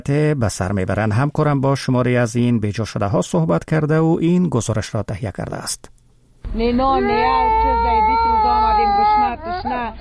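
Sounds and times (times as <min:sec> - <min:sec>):
speech: 0:00.0 - 0:09.9
hungry toddler crying: 0:07.0 - 0:09.9.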